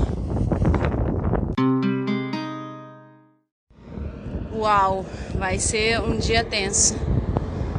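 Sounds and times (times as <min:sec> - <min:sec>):
gusty wind buffeting against the microphone: 0:00.0 - 0:01.6, 0:03.7 - 0:07.7
ringing chord: 0:01.6 - 0:03.4
speech: 0:04.6 - 0:07.2.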